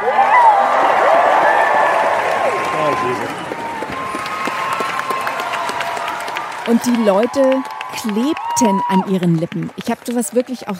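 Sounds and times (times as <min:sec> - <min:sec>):
large crowd clapping: 0:00.0 - 0:10.7
speech: 0:03.0 - 0:03.4, 0:06.7 - 0:10.7.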